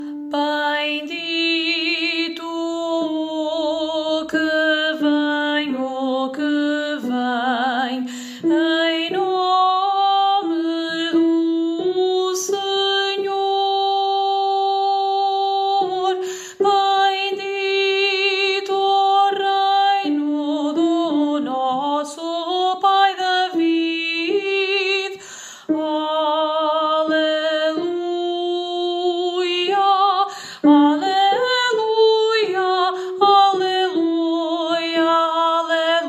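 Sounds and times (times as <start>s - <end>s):
alto voice singing a liturgical verse: 0.0s - 36.0s.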